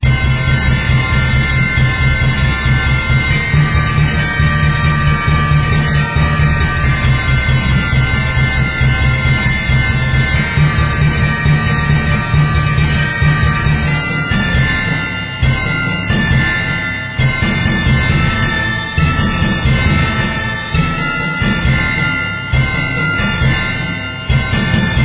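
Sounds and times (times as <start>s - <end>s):
manic percussion: 0.0s - 25.0s.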